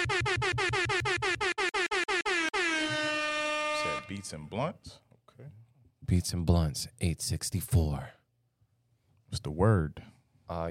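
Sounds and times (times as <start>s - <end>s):
air horn blasts: 0.0s - 4.4s
speech: 4.1s - 8.2s, 9.3s - 10.6s.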